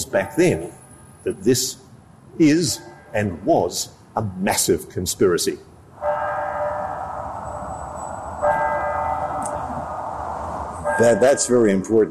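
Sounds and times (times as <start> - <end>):
speech: 0.1 - 6.2, 11.0 - 12.0
droning bell or gong tone on an old recording: 6.0 - 10.1, 10.7 - 11.5.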